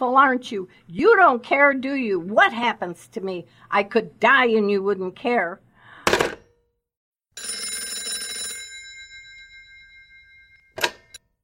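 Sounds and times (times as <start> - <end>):
speech: 0.0 - 5.6
old-fashioned telephone bell ringing: 7.4 - 11.2.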